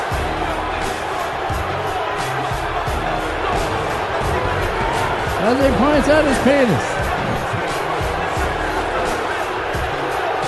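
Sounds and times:
big arena crowd booing: 0.0 - 10.4
speech: 5.5 - 6.9.

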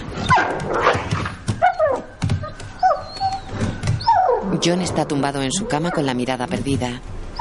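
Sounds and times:
wolf whining at night: 0.1 - 6.2
speech: 4.6 - 7.2.

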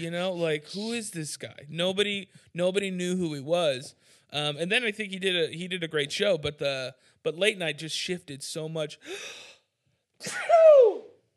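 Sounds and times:
speech: 0.0 - 9.5, 10.2 - 11.0
sneeze: 10.2 - 11.1.

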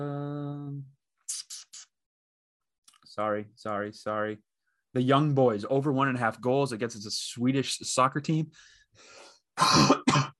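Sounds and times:
speech: 3.2 - 10.2
person coughing: 9.6 - 10.3.

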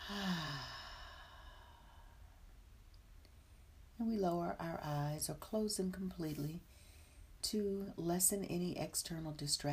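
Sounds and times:
soft exhaled breath during a guided breathing exercise: 0.0 - 2.4
speech: 0.1 - 0.5, 4.0 - 6.8, 7.4 - 9.7.

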